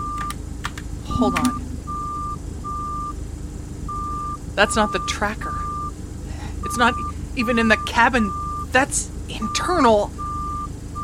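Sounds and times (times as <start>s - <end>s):
constant low rumbling background: 0.0s - 11.0s
electronic proximity alert beeps from an app: 1.1s - 3.1s, 3.9s - 5.9s, 6.6s - 11.0s
speech: 1.2s - 1.7s, 4.6s - 5.6s, 6.7s - 10.2s.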